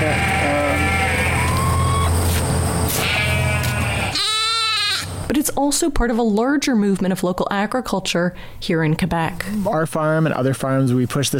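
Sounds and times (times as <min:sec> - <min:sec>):
flock of sheep bleating: 0:00.0 - 0:02.1, 0:03.0 - 0:05.2
speech: 0:05.6 - 0:11.3.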